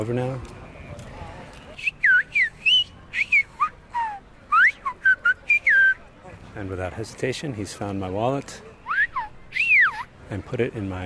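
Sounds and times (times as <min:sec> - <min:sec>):
speech: 0:00.0 - 0:00.6, 0:06.6 - 0:08.7, 0:10.3 - 0:11.0
faint noise: 0:00.0 - 0:11.0
person whistling short sliding notes: 0:01.8 - 0:06.0.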